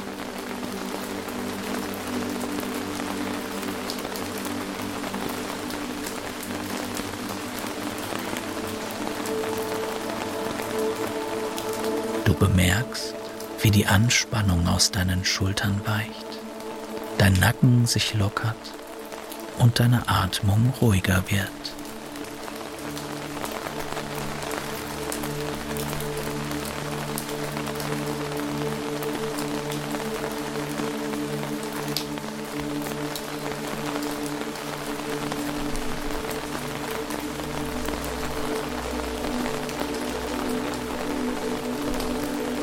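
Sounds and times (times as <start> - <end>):
dense rain pattering on leaves and ground in a forest: 0.0 - 42.6
speech: 12.4 - 16.2, 17.2 - 18.8, 19.6 - 21.8.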